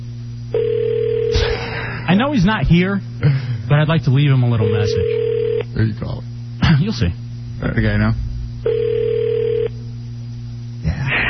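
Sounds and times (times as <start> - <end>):
faint hum: 0.0 - 11.2
electronic telephone ring tone through a telephone line: 0.5 - 1.4, 4.6 - 5.6, 8.6 - 9.8
speech: 2.1 - 8.8.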